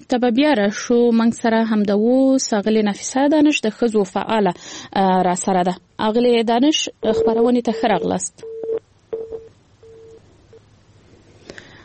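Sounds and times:
speech: 0.1s - 8.5s
faint telephone line beeps as a call connection drops: 7.0s - 10.6s.

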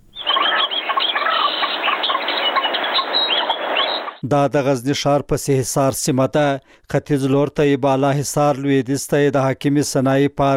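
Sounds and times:
birds chirping and singing in an outdoor recreation area near Ghazni city, Afghanistan: 0.0s - 4.2s
speech: 4.2s - 10.5s.

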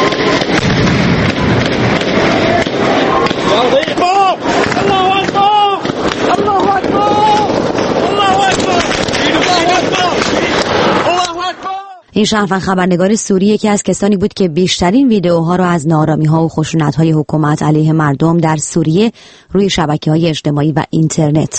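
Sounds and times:
continuous wind-like rumble: 0.0s - 11.5s
gunshots: 0.0s - 11.7s
people screaming and shouting: 2.2s - 12.0s
speech: 12.2s - 21.5s.

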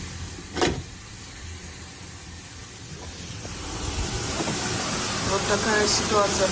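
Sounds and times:
steam hissing in an apartment building stairwell in Klimovsk Podolsk Moscow region: 0.0s - 6.5s
water flowing in an apartment building stairwell in Klimovsk Podolsk Moscow region: 2.0s - 6.5s
speech: 5.5s - 6.5s.

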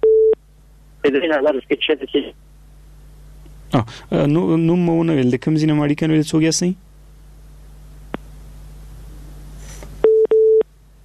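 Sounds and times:
telephone line tone beeps marking a dropped phone call: 0.0s - 0.4s, 10.0s - 10.6s
speech: 1.1s - 2.5s, 3.7s - 6.9s.

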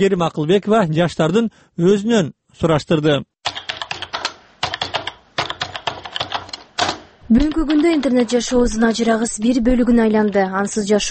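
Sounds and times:
speech: 0.0s - 3.3s, 7.3s - 11.0s
fingers typing on a computer keyboard: 3.4s - 10.9s.

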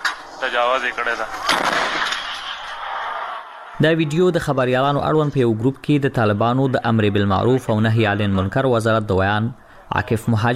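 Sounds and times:
locally made cannon fired by Taliban forces in Kunar toward the Pakistani side: 0.0s - 4.1s
speech: 0.4s - 1.8s, 3.8s - 10.5s.

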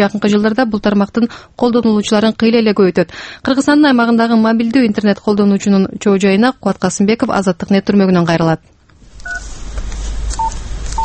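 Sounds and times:
speech: 0.0s - 8.7s
mobile phone keypad tones: 9.2s - 9.5s, 10.4s - 11.0s.

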